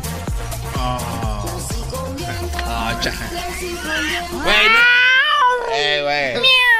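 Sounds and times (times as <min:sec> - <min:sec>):
voice imitating a yowling cat: 0:00.8 - 0:01.7, 0:03.4 - 0:06.7
speech: 0:02.3 - 0:05.0, 0:05.7 - 0:06.6.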